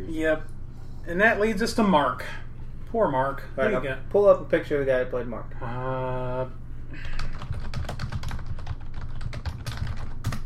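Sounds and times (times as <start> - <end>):
steady low hum: 0.0 - 10.4
speech: 0.1 - 7.2
fast forceful typing on a computer keyboard: 7.1 - 10.4.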